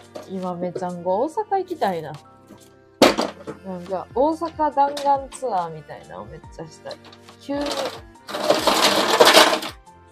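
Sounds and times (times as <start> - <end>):
speech: 0.3 - 2.7, 3.4 - 8.4
ice cubes clattering and clinking into a glass: 7.7 - 9.8.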